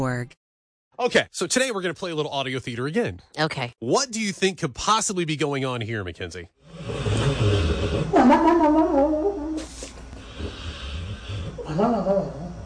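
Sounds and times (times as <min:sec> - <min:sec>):
speech: 0:00.0 - 0:00.4, 0:01.0 - 0:08.4, 0:11.8 - 0:12.4
dog snoring: 0:06.6 - 0:08.2, 0:09.6 - 0:12.6.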